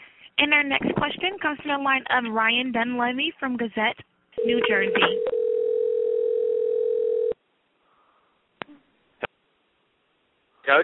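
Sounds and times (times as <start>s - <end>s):
speech: 0.4s - 5.4s
loud steady telephone tone on a conference line: 4.4s - 7.4s.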